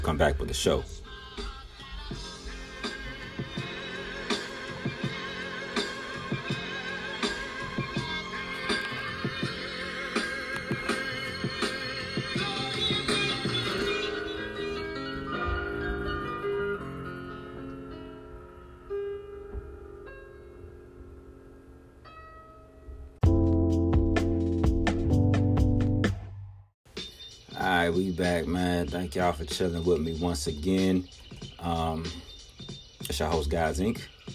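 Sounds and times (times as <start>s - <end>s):
speech: 0.0s - 1.5s, 29.0s - 32.3s, 33.2s - 34.3s
hip-hop instrumental with punchy drums and melodic loop: 0.0s - 18.6s, 23.2s - 34.3s.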